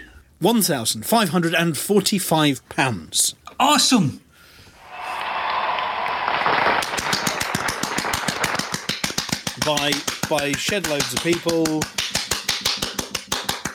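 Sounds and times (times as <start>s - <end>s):
speech: 0.4s - 4.2s, 9.6s - 12.7s
brief rush of noise: 4.8s - 8.1s
person clapping quickly as a drum roll: 5.2s - 13.7s.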